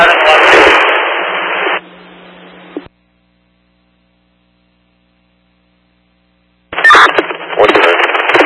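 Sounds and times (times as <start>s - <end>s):
crackling static from a radio transmission: 0.0s - 2.9s, 6.7s - 8.4s
steady low hum: 0.7s - 8.4s.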